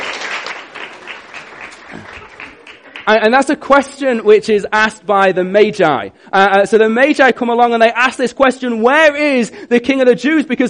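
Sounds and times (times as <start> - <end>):
crowd applauding a reader: 0.0 - 3.3
speech: 3.1 - 10.6.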